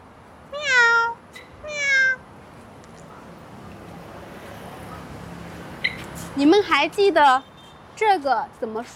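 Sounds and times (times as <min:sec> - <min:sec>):
cat meowing: 0:00.6 - 0:02.2
speech: 0:06.4 - 0:08.9.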